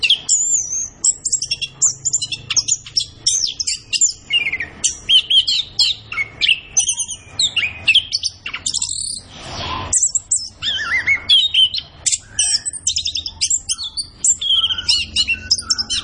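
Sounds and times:
Orange-headed thrush singing fast varied whistles and chips: 0.0s - 16.0s
short harsh rushing sound: 9.2s - 10.0s.

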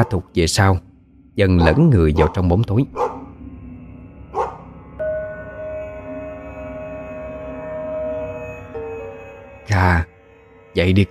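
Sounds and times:
dog barking behind a house: 0.0s - 0.3s, 1.5s - 3.3s, 4.4s - 4.6s
speech: 0.0s - 3.1s, 10.8s - 11.0s
steady low tonal hum: 0.4s - 11.0s.

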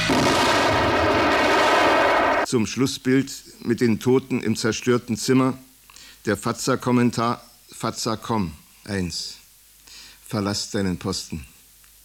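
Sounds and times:
explosion destroying a room: 0.1s - 2.5s
gunshot: 0.1s - 2.5s
speech: 2.5s - 9.4s, 10.3s - 11.5s.

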